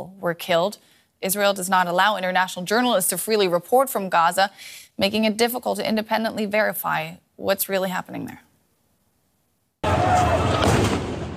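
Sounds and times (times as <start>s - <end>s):
speech: 0.0s - 8.5s
crowd agitated shouting and commotion: 9.8s - 11.0s
loud blast with heavy rumble: 9.8s - 11.3s.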